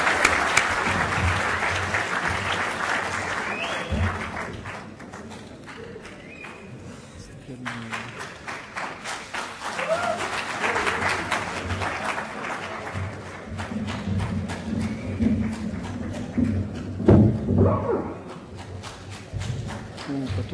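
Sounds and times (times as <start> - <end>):
crowd applauding: 0.0 - 20.5
scattered whoops and voices: 9.8 - 10.3.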